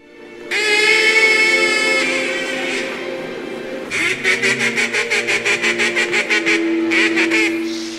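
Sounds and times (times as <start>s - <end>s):
duck call whistle quacking: 0.5s - 3.0s, 3.9s - 7.9s.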